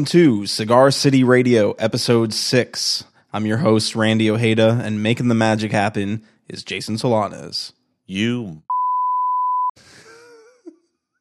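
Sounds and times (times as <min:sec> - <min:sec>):
speech: 0:00.0 - 0:08.7
laughter: 0:03.4 - 0:04.1, 0:09.8 - 0:10.8
censor bleep tone: 0:08.7 - 0:09.8.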